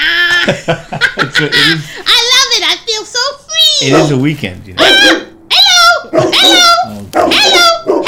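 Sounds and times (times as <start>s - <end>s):
laughter: 0.0s - 2.1s
speech: 0.5s - 2.8s, 3.8s - 5.2s, 6.4s - 8.0s
dog barking in a yowling, almost talking tone: 3.8s - 4.2s, 4.8s - 5.4s, 6.1s - 8.0s.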